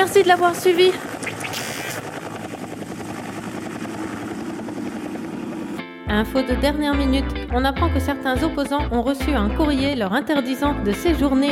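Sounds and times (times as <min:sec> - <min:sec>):
speech: 0:00.0 - 0:01.2, 0:06.1 - 0:11.5
helicopter rotor blades beating: 0:00.0 - 0:05.8.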